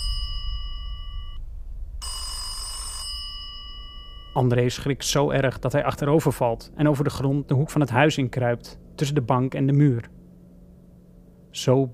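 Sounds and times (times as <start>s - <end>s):
old-fashioned telephone bell ringing: 0.0s - 1.4s, 2.0s - 4.4s
low rumble: 0.0s - 11.6s
speech: 4.4s - 10.2s, 11.6s - 11.9s.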